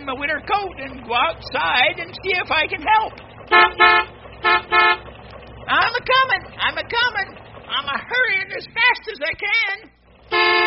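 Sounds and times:
low rumble: 0:00.0 - 0:10.6
speech: 0:00.1 - 0:05.1, 0:05.7 - 0:10.6
big truck horn honking in short loud blasts: 0:03.4 - 0:05.2, 0:10.2 - 0:10.6.

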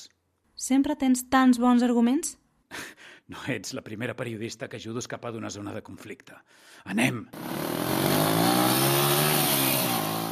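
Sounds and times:
speech: 0:00.6 - 0:09.0
large-displacement motorcycle engine revving: 0:07.4 - 0:10.3.

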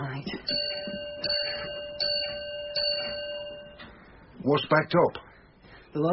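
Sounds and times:
hum: 0:00.0 - 0:06.1
railway signal box block bell ringing: 0:00.3 - 0:03.9
speech: 0:04.4 - 0:05.3, 0:06.0 - 0:06.1.

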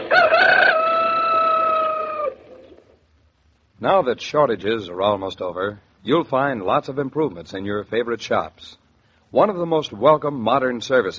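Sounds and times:
old rooster crowing: 0:00.0 - 0:02.8
speech: 0:03.8 - 0:11.1.

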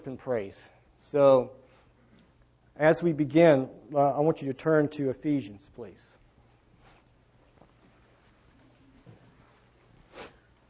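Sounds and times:
speech: 0:00.0 - 0:01.6, 0:02.8 - 0:06.2
steady hum: 0:00.0 - 0:10.6
nasal sniffles: 0:10.0 - 0:10.5.

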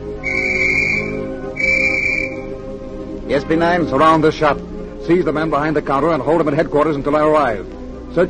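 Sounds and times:
police whistle blasts: 0:00.2 - 0:02.6
speech: 0:03.3 - 0:08.2.

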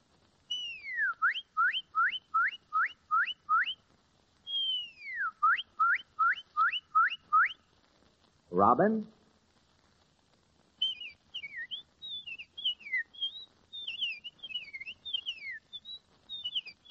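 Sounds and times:
woman whistling an imitation of cardinal song: 0:00.5 - 0:03.8, 0:04.5 - 0:07.6, 0:10.8 - 0:16.8
speech: 0:08.6 - 0:09.2.

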